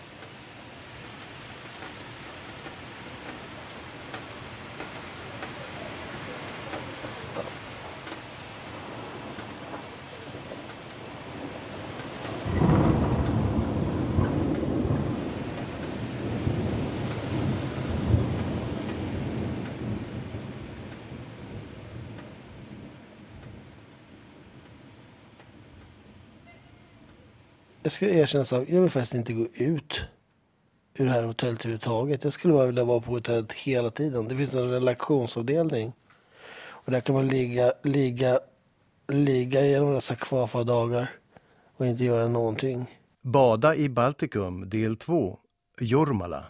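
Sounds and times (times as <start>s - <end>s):
deep rumble of thunder: 0.0s - 27.5s
steady heavy rain: 0.0s - 30.2s, 31.0s - 42.8s
speech: 27.9s - 30.1s, 31.0s - 36.0s, 36.8s - 38.5s, 39.1s - 41.2s, 41.8s - 46.4s.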